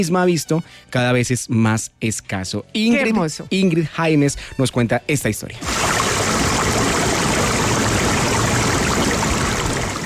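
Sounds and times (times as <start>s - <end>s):
speech: 0.0s - 7.0s
river water flowing over stones: 5.6s - 10.0s.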